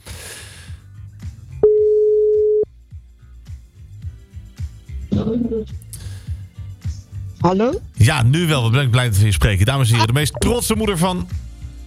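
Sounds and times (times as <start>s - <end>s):
telephone calling tone while dialling: 1.6s - 2.6s
speech: 5.2s - 5.8s, 7.4s - 11.4s.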